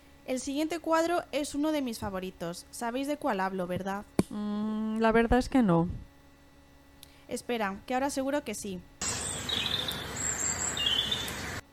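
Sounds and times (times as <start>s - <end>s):
speech: 0.3s - 6.1s, 7.3s - 8.9s
birds chirping and twittering in chorus: 9.0s - 11.6s.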